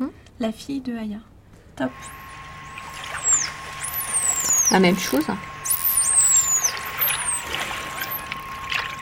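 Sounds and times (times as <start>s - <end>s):
speech: 0.4s - 2.3s, 4.7s - 5.5s
steady electronic tone: 1.9s - 8.9s
high sweeping dolphin signature whistles: 2.0s - 8.9s.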